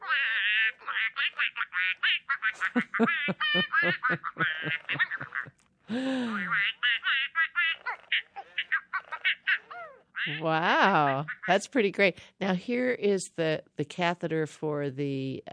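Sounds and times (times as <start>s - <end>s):
toy duck quacking in silly mode: 0.0s - 5.4s, 6.5s - 11.6s
speech: 0.8s - 4.8s, 10.4s - 15.5s
laughter: 2.4s - 6.6s.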